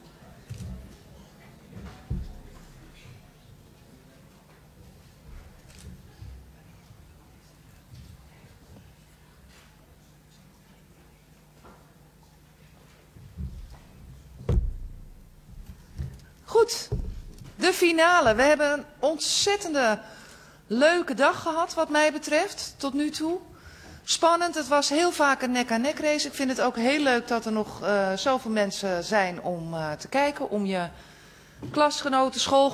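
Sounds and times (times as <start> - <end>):
soft knock: 2.0 - 2.7, 13.4 - 16.2, 16.9 - 17.6
heavy council chamber doors thudding shut: 14.5 - 16.2, 16.9 - 17.6
speech: 16.6 - 17.0, 17.6 - 23.5, 24.1 - 32.7.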